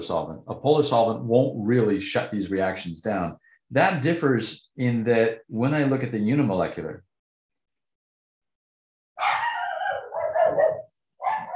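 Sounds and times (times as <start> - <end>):
speech: 0.0 - 7.1
dogs barking and baying: 9.2 - 11.5.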